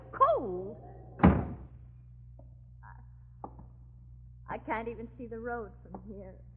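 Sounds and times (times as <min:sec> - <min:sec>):
low steady hum: 0:00.0 - 0:06.5
speech: 0:00.4 - 0:00.9, 0:04.7 - 0:06.5
door shutting thud: 0:01.1 - 0:01.7.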